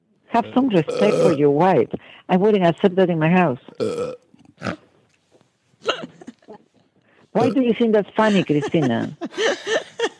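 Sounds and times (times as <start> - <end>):
speech: 0.4 - 4.8, 7.4 - 9.7
person burping: 0.5 - 1.4, 3.8 - 4.8, 7.4 - 7.6
laughter: 5.8 - 6.7, 7.9 - 10.1.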